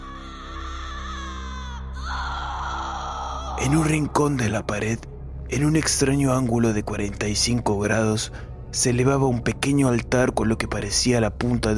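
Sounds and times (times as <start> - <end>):
loud screaming wails in the dark: 0.0 - 4.0
speech: 3.6 - 11.7.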